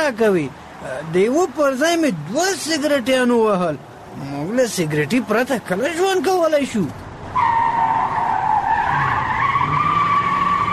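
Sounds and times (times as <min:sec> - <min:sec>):
speech: 0:00.0 - 0:07.0
car tires squealing in a skid as the car is driven fast: 0:07.4 - 0:10.7.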